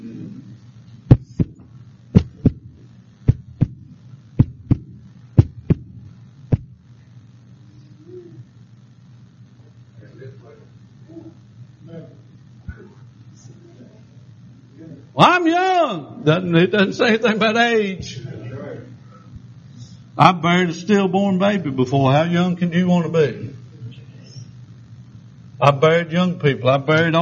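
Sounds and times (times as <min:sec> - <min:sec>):
low droning hum: 0:00.0 - 0:15.2, 0:18.0 - 0:26.9
heartbeat sound effect double thumps: 0:01.1 - 0:06.8
speech: 0:15.2 - 0:18.2, 0:20.2 - 0:23.6, 0:25.6 - 0:27.2.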